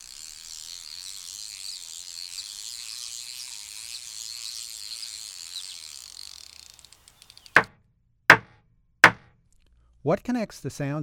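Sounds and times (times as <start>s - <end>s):
fishing line reeled in with a clicking ratchet: 0.0s - 7.6s
speech: 10.1s - 11.0s.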